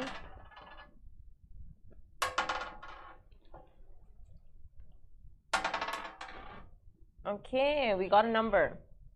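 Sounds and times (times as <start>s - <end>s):
dice clattering across a hard table: 0.0s - 0.9s, 2.2s - 3.2s, 5.6s - 6.6s
speech: 7.3s - 8.9s.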